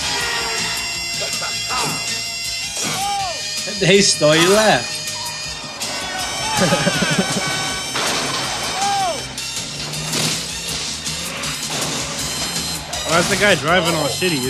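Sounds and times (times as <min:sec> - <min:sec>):
laughter: 0:00.0 - 0:14.4
road rumble: 0:00.0 - 0:14.4
shouting voices: 0:00.0 - 0:14.4
heavy thuds and crashing bangs of limo being kicked from inside: 0:00.7 - 0:14.4
speech: 0:03.8 - 0:05.0, 0:06.6 - 0:07.0, 0:13.2 - 0:14.4.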